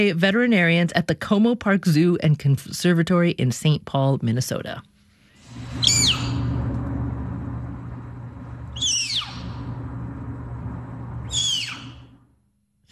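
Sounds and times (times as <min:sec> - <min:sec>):
speech: 0:00.0 - 0:04.9
steady low hum: 0:00.0 - 0:12.8
captive snow leopard cub squeaking while being weighed by veterinarians: 0:08.8 - 0:09.5, 0:11.3 - 0:12.0.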